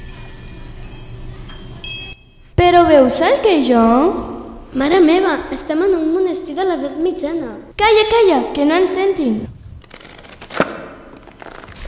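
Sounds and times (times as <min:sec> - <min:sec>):
speech: 0:02.7 - 0:09.5
book page turning: 0:09.8 - 0:11.8.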